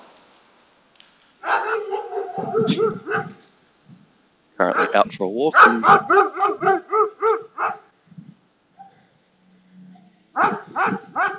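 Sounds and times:
agitated dog barking in loud yaps: 0:01.4 - 0:03.4, 0:04.7 - 0:07.9, 0:10.4 - 0:11.3
speech: 0:04.6 - 0:06.8.

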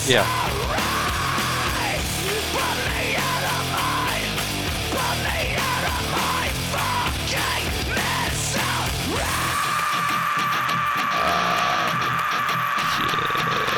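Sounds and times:
loud dense rock band with pounding drums and distorted guitars: 0:00.0 - 0:13.7
singer screaming and wailing in a rock song: 0:00.0 - 0:13.7
speech: 0:00.1 - 0:00.5.

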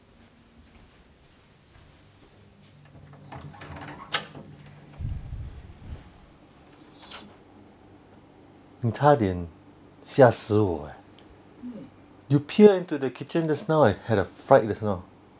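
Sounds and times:
kitchen door creaking open: 0:02.9 - 0:06.2
low rumbling rattle from a kitchen door handle and hinges: 0:03.1 - 0:05.8
speech: 0:08.8 - 0:11.0, 0:12.3 - 0:15.1.

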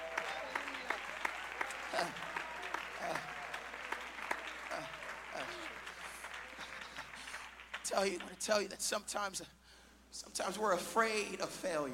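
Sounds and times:
audience clapping hands: 0:00.0 - 0:09.2
speech: 0:01.9 - 0:02.4, 0:03.0 - 0:03.4, 0:04.8 - 0:05.8, 0:07.9 - 0:11.9.

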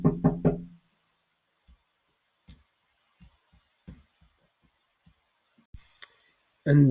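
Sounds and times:
postman knocking on a door: 0:00.0 - 0:00.8.

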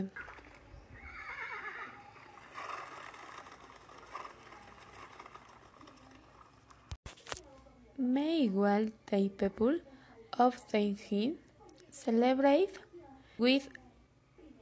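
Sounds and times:
speech: 0:00.0 - 0:00.3, 0:08.0 - 0:11.4, 0:12.0 - 0:13.8
horse neighing: 0:00.2 - 0:03.3.

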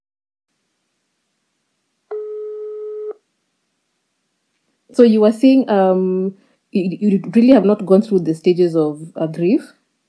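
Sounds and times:
telephone line tone as a phone call connects: 0:02.1 - 0:03.2
speech: 0:04.9 - 0:09.8.

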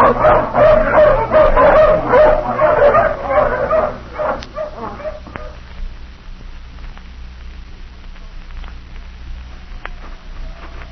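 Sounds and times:
pack of hounds let off the leash barking and yipping: 0:00.0 - 0:05.6.

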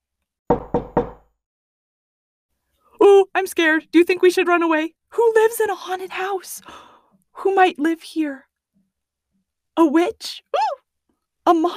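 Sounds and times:
knocking on a wooden door: 0:00.5 - 0:01.3
speech: 0:03.4 - 0:08.5, 0:09.8 - 0:10.8, 0:11.5 - 0:11.7.

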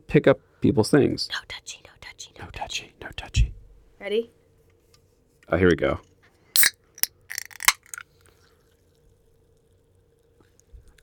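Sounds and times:
speech: 0:00.1 - 0:04.4, 0:05.5 - 0:06.1
sparkling water pouring and splashing: 0:06.6 - 0:08.0.

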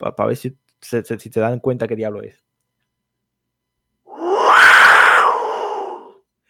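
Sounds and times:
speech: 0:00.0 - 0:02.5
Maya wind instrument imitating a jaguar's roar: 0:04.2 - 0:06.1.

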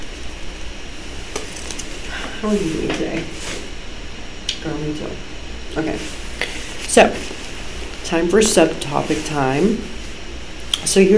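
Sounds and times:
MacBook laptop cooling fan whirring: 0:00.0 - 0:11.1
speech: 0:02.4 - 0:03.6, 0:04.6 - 0:06.2, 0:06.9 - 0:07.4, 0:08.1 - 0:10.0, 0:10.8 - 0:11.1.

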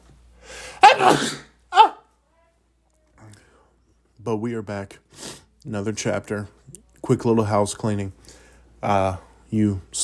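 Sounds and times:
shorter quieter vocal burst: 0:00.6 - 0:01.9
loud human sneeze: 0:00.7 - 0:02.0
speech: 0:04.2 - 0:10.0.

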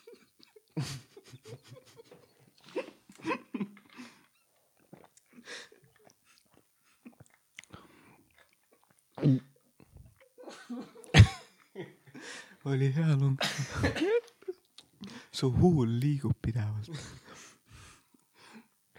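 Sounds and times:
laughter: 0:00.0 - 0:03.7
person coughing after soda fizz went down the throat: 0:10.4 - 0:11.5, 0:13.4 - 0:14.2
speech: 0:12.7 - 0:14.2, 0:15.4 - 0:17.3.

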